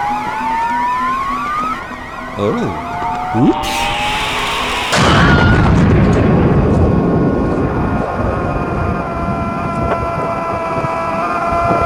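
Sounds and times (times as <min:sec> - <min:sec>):
warbling siren-like whine: 0:00.0 - 0:11.8
electronic proximity alarm from a phone app beeping: 0:00.7 - 0:05.8
slowly rising tone: 0:01.5 - 0:07.1
speech: 0:02.4 - 0:04.0.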